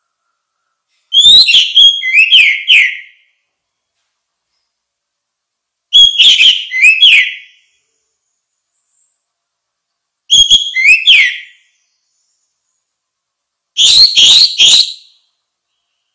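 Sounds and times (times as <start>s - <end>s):
orange-headed thrush repeating phrases of bright whistles and chirps: 0.0s - 3.2s, 5.9s - 7.7s, 10.3s - 12.3s, 13.8s - 16.1s.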